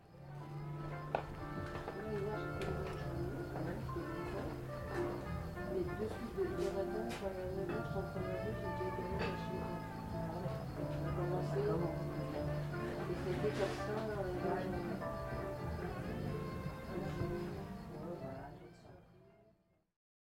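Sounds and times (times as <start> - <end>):
jazz atmosphere music: 0.0 - 18.5.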